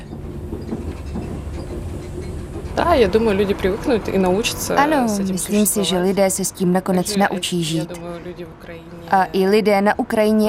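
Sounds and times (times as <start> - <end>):
train rolling along rails heard from inside a passenger compartment: 0.0 - 7.8
speech: 2.8 - 10.4.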